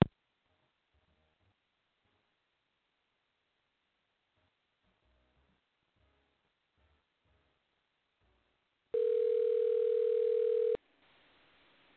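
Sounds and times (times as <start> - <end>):
telephone dial tone while placing a call: 9.0 - 10.8.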